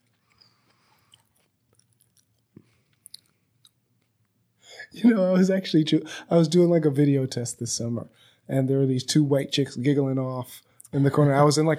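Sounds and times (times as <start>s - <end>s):
chewing food with crunchy bites and smacking mouth sounds: 0.0s - 4.1s
speech: 5.0s - 11.7s.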